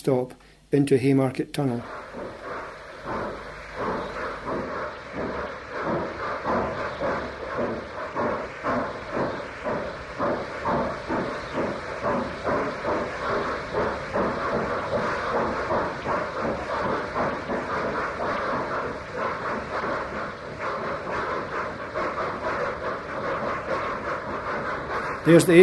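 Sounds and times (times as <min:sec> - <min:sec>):
speech: 0:00.0 - 0:02.4, 0:25.3 - 0:25.6
Black 5 steam locomotive two-cylinder exhaust chuffing: 0:00.0 - 0:25.6
rail noise: 0:01.6 - 0:25.6.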